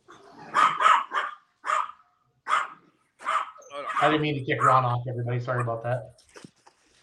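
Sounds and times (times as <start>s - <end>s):
dog barking: 0.1s - 4.9s, 5.5s - 5.8s
speech: 4.0s - 6.2s.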